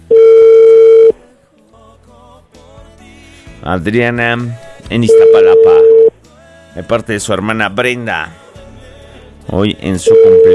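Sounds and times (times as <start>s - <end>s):
telephone tone while placing a call: 0.0s - 1.2s, 5.1s - 6.2s, 10.0s - 10.5s
speech: 3.6s - 5.9s, 6.8s - 8.4s, 9.5s - 10.5s.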